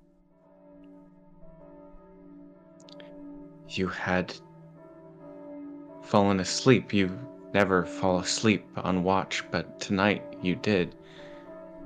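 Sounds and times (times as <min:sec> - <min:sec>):
bells tolling with rich overlapping resonant tones: 0:00.5 - 0:11.8
speech: 0:03.7 - 0:04.5, 0:06.1 - 0:11.2.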